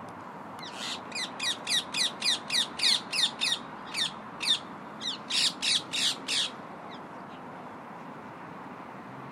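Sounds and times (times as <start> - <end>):
flock of parakeets squawking while settling down for the night in a park: 0.6 - 6.6.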